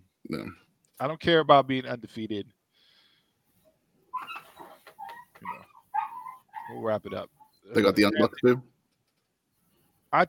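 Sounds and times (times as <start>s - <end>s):
speech: 0.3s - 2.6s, 6.7s - 8.7s
dogs whining and yipping: 4.1s - 7.6s.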